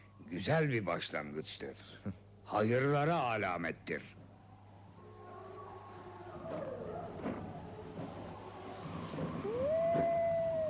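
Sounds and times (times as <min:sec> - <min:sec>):
noisy outdoor background: 0:00.0 - 0:10.6
speech: 0:00.3 - 0:04.2
wolves howling: 0:04.3 - 0:10.6.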